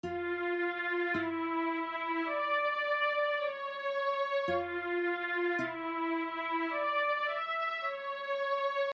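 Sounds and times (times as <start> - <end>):
chorus guitar strings: 0.0 - 8.1.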